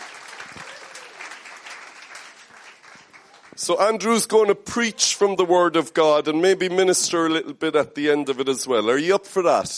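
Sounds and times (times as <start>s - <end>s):
church audience applauding: 0.0s - 3.8s
speech: 3.6s - 9.7s.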